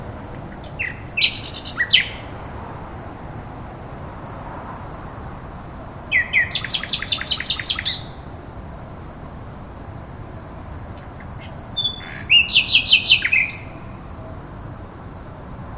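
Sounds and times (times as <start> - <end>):
common nightingale song: 0.3 - 2.5, 4.4 - 8.2, 11.0 - 14.1.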